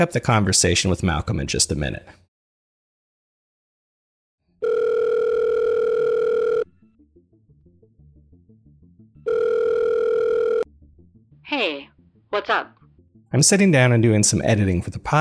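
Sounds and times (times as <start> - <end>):
speech: 0.0 - 2.2, 11.5 - 15.1
telephone ringback tone: 4.6 - 6.8, 9.2 - 10.7.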